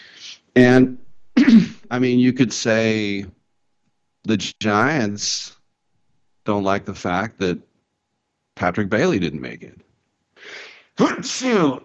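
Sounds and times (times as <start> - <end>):
speech: 0.6 - 3.4, 4.2 - 5.6, 6.4 - 7.7, 8.6 - 9.8, 10.4 - 11.8
person sneezing: 1.4 - 1.9.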